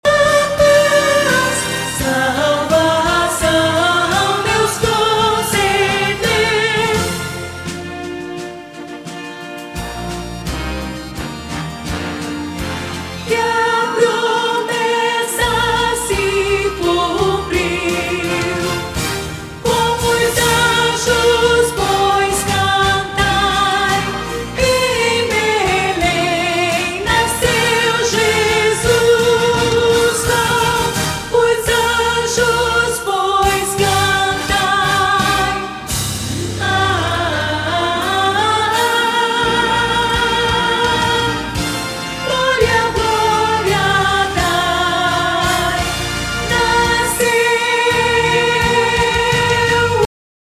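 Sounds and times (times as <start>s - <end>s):
contraltos singing a Christmas cantata: 0.0s - 9.8s, 11.2s - 50.1s.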